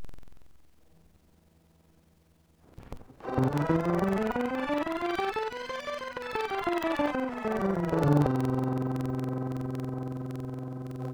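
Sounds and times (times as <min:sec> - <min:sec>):
distorted C scale: 0:03.2 - 0:11.1.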